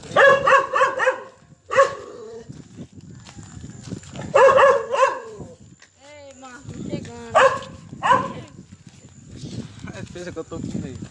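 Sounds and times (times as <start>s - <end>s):
dog barking: 0.1s - 2.2s, 4.3s - 5.4s, 7.3s - 8.4s
speech: 10.2s - 11.0s.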